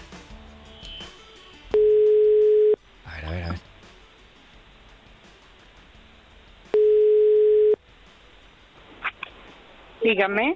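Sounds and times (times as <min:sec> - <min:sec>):
quiet hiss: 0:00.0 - 0:10.5
steady telephone line tone while dialing a call: 0:01.7 - 0:02.8, 0:06.7 - 0:07.8
speech: 0:10.1 - 0:10.5.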